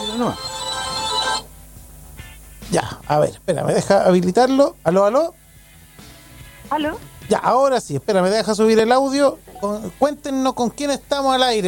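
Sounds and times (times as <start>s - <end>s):
telephone ringtone signalling an incoming call: 0.0s - 1.5s
low hum: 0.0s - 11.6s
speech: 0.2s - 0.7s, 2.7s - 5.4s, 6.7s - 11.6s.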